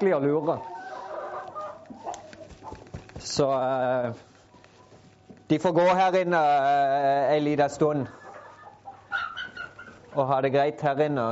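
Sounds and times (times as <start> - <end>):
speech: 0.0 - 0.8, 3.2 - 4.3, 5.5 - 8.2, 10.1 - 11.3
hens clucking inside the coop: 0.0 - 3.4, 7.4 - 10.3.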